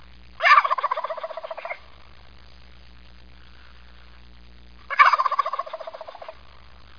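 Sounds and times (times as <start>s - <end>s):
turkey: 0.4s - 1.8s, 4.9s - 6.4s.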